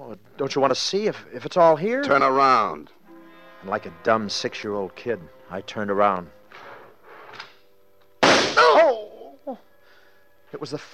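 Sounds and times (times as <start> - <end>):
speech: 0.1 - 3.0, 3.6 - 6.4, 10.5 - 10.9
gunshot: 8.2 - 8.8
person crying out: 8.4 - 9.6.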